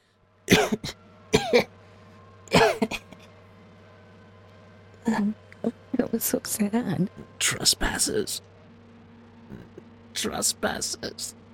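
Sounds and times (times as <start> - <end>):
faint steady hum: 0.0 - 11.5
speech: 0.5 - 1.7, 2.8 - 3.0, 5.1 - 8.5, 10.2 - 11.4
voice imitating a wounded harpy coughing: 0.5 - 1.7, 2.5 - 3.2.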